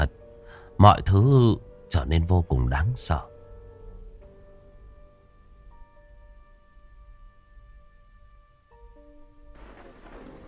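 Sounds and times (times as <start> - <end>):
speech: 0.8 - 3.3
heavy rain on dry thatched roofs during a thunderstorm: 9.6 - 10.4
low thunder rumbles: 9.6 - 10.4.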